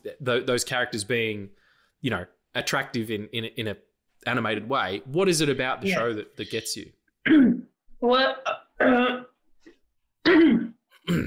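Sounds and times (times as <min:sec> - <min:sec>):
speech: 0:00.2 - 0:09.2, 0:11.1 - 0:11.2
person clearing throat: 0:07.2 - 0:07.7, 0:10.2 - 0:11.2.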